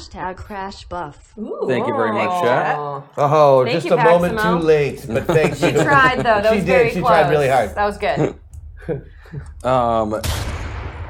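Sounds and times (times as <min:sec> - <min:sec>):
speech: 0:00.1 - 0:10.5
laughter: 0:01.7 - 0:10.0
single gunshot in a video game: 0:10.2 - 0:11.0.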